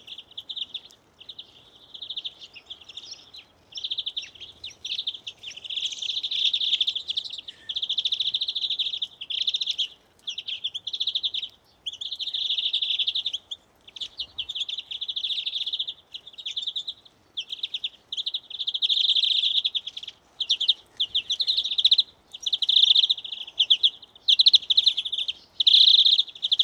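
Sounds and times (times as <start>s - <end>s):
European greenfinch Chloris chloris buzzy trilled phrases: 0.0s - 26.6s.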